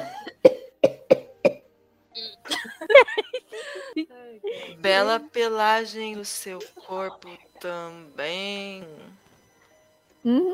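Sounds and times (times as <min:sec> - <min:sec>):
person coughing, choking on cigarette smoke: 0:00.0 - 0:01.6
laughter: 0:02.5 - 0:04.6
speech: 0:04.4 - 0:09.2, 0:10.2 - 0:10.5.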